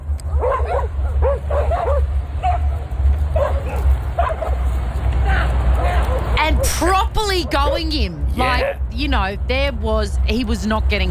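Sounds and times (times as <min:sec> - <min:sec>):
loud rumbling background: 0:00.0 - 0:11.0
several dogs barking, yipping and whining while chasing a man: 0:00.2 - 0:08.7
human voices: 0:05.2 - 0:11.0
speech: 0:07.4 - 0:11.0.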